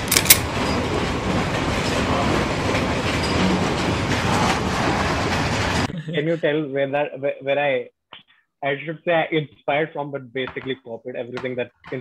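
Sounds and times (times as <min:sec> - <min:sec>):
train rumbling past on a railway line: 0:00.0 - 0:06.0
laughter: 0:05.9 - 0:07.1
speech: 0:06.2 - 0:08.0, 0:08.6 - 0:11.9.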